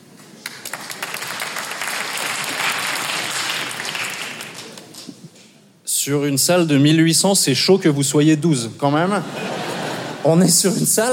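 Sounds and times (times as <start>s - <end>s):
scattered applause from a small group of audience members: 0.2s - 5.2s
speech: 6.0s - 9.5s, 10.2s - 11.1s
laughter: 9.1s - 10.7s.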